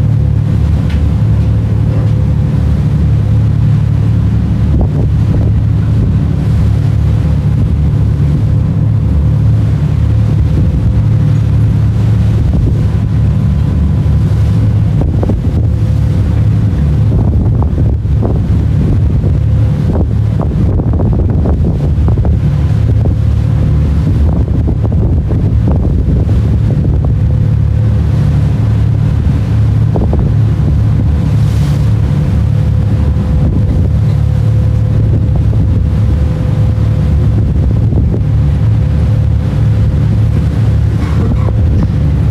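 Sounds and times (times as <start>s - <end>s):
constant low rumbling on a moving ferry: 0.0s - 42.2s
sea water washing and churning around a moving ferry: 0.0s - 42.2s
wind buffeting on a moving ferry: 0.0s - 42.2s.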